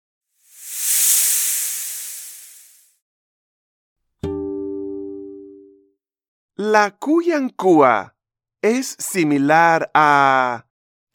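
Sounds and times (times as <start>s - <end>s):
snake hissing: 0.5s - 2.8s
speech: 6.6s - 10.7s.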